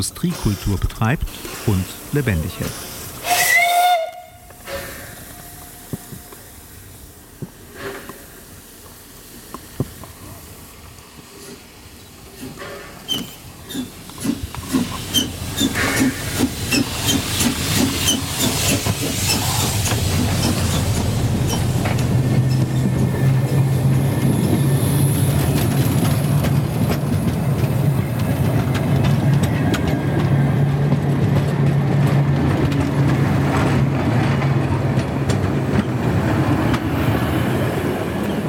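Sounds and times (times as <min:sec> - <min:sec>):
speech: 0:00.0 - 0:02.9
narrow-gauge mining railway steam locomotive hissing and venting steam: 0:00.0 - 0:28.6
narrow-gauge mining railway steam locomotive chuffing as it gets underway: 0:00.0 - 0:38.4.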